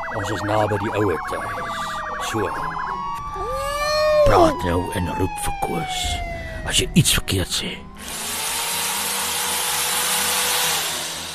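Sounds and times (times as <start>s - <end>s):
speech: 0.2s - 3.6s, 4.3s - 8.3s
electric drill running: 8.0s - 11.3s.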